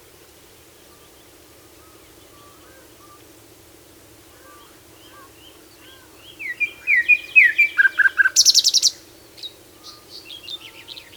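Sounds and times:
common nightingale Luscinia megarhynchos singing: 0:05.8 - 0:11.1.

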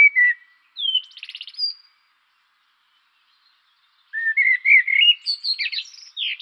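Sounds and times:
common blackbird Turdus merula singing: 0:00.0 - 0:02.0, 0:02.9 - 0:06.4.

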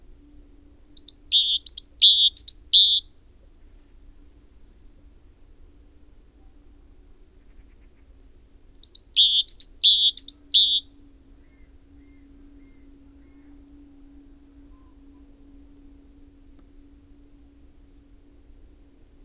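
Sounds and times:
faint low steady hum: 0:00.0 - 0:19.2
great tit Parus major paired notes: 0:01.0 - 0:03.0, 0:08.8 - 0:10.8.

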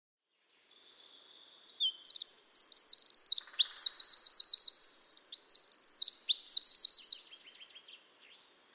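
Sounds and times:
Eurasian wren Troglodytes troglodytes singing: 0:01.4 - 0:07.9.

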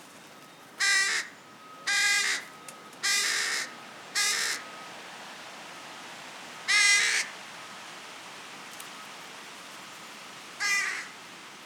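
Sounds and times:
Carrion crow Corvus corone giving harsh rasping caws: 0:00.8 - 0:01.3, 0:01.9 - 0:02.4, 0:03.0 - 0:04.6, 0:06.7 - 0:07.3, 0:10.6 - 0:11.1.

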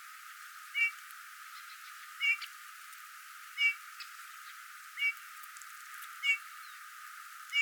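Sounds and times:
Eurasian bullfinch Pyrrhula pyrrhula mellow whistled calls: 0:02.2 - 0:02.5.

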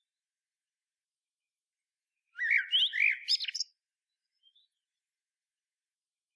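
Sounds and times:
common blackbird Turdus merula singing: 0:02.3 - 0:04.8.

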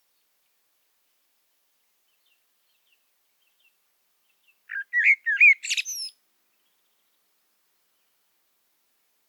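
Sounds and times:
common blackbird Turdus merula song phrase: 0:02.0 - 0:07.3.

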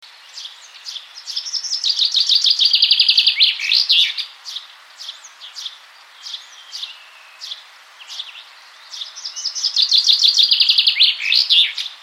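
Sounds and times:
common chaffinch Fringilla coelebs singing descending trills: 0:00.0 - 0:12.0.

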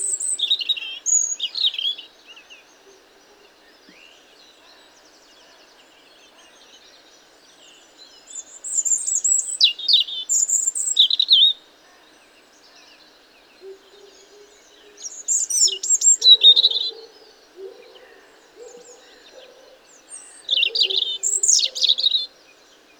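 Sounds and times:
European robin Erithacus rubecula singing with liquid tumbling phrases and fast trills: 0:00.0 - 0:04.2, 0:07.6 - 0:11.6, 0:13.6 - 0:22.4.

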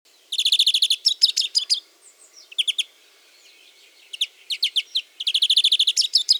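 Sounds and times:
Chloris chloris European greenfinch calling with rapid trills: 0:00.3 - 0:02.9, 0:04.0 - 0:06.3.

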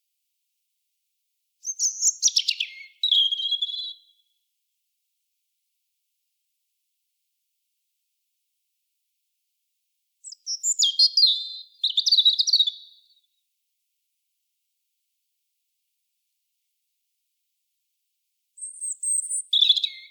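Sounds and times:
European robin Erithacus rubecula song of thin whistles and quick trills: 0:01.6 - 0:04.2, 0:10.2 - 0:13.2, 0:18.6 - 0:20.0.

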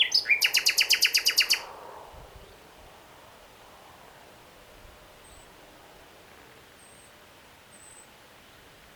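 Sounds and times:
common nightingale Luscinia megarhynchos singing: 0:00.0 - 0:01.7, 0:06.7 - 0:08.9.

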